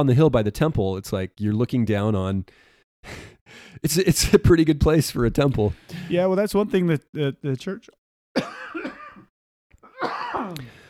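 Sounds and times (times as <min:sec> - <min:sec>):
speech: 0:00.0 - 0:08.8, 0:10.0 - 0:10.8
person coughing: 0:08.4 - 0:10.8
throat clearing: 0:08.4 - 0:10.8.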